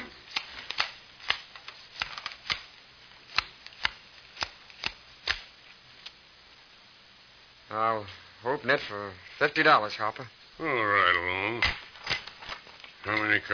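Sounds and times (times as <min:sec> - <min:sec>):
playing cards shuffled and dealt for a poker game: 0:00.0 - 0:02.7, 0:03.3 - 0:05.5, 0:11.6 - 0:13.5
speech: 0:07.7 - 0:11.8, 0:13.1 - 0:13.5.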